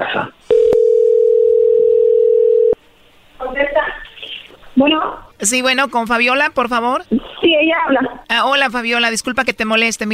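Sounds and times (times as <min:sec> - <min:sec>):
telephone dial tone before a call is placed: 0:00.5 - 0:02.8
speech: 0:04.8 - 0:10.1.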